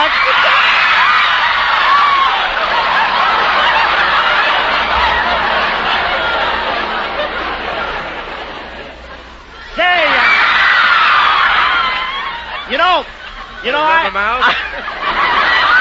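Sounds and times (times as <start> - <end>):
studio audience of girls screaming and shrieking: 0.0 - 7.4, 9.6 - 13.6
laughter: 0.0 - 15.7
speech: 14.0 - 14.6.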